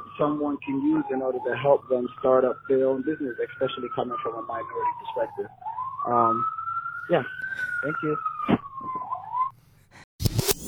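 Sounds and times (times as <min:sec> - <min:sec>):
police siren wailing on a street in New York City: 0:00.0 - 0:09.5
speech: 0:00.2 - 0:08.6.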